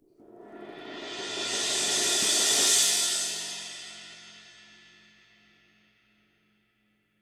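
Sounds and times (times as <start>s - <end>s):
high ride cymbal roll on a Gretsch drum kit: 0.8s - 5.2s.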